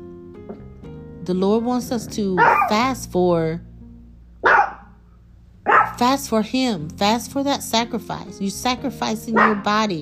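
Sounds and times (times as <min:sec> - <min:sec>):
low hum: 0:00.0 - 0:10.0
speech: 0:01.3 - 0:03.7, 0:06.0 - 0:10.0
chihuahua barking: 0:02.4 - 0:02.8, 0:04.4 - 0:04.9, 0:05.7 - 0:06.0, 0:09.4 - 0:09.7.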